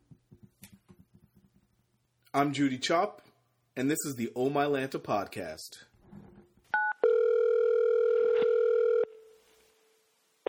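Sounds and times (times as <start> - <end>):
speech: 2.3 - 3.2, 3.8 - 5.9
landline telephone dial tone: 6.8 - 9.3.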